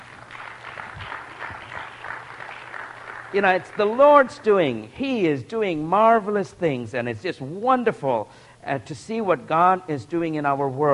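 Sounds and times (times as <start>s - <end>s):
crowd of people applauding: 0.0s - 4.3s
speech: 3.3s - 10.9s.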